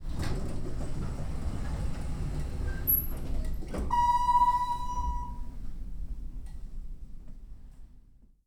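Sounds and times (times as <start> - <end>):
elevator door opening: 0.1 - 5.6.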